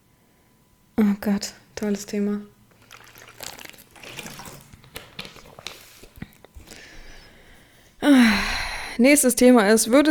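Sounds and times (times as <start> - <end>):
speech: 1.2 - 2.5, 9.0 - 10.0
water sloshing: 1.7 - 7.4
person drinking water: 1.7 - 7.9
person swallowing water: 1.8 - 7.5.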